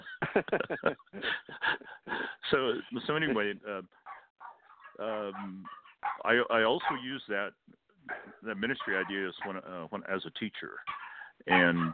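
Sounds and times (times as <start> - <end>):
laughter: 0.0 - 3.8, 5.0 - 5.5, 8.5 - 9.5, 11.5 - 11.9
speech: 0.4 - 4.0, 5.0 - 11.9
dog barking in sharp yappy bursts: 4.0 - 7.1, 8.1 - 9.6.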